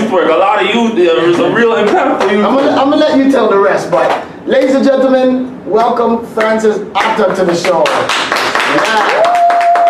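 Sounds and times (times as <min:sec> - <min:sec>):
speech: 0:00.1 - 0:09.2
hands clapping: 0:04.0 - 0:04.8, 0:05.8 - 0:09.8.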